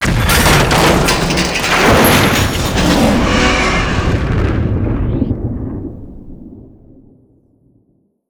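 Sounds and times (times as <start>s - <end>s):
gunship crash: 0.0s - 6.3s.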